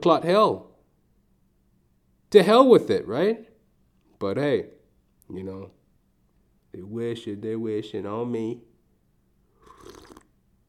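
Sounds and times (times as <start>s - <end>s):
speech: 0.0s - 0.7s, 2.3s - 3.5s, 4.2s - 5.8s, 6.7s - 8.7s
noisy slurping sip of coffee: 9.5s - 10.3s.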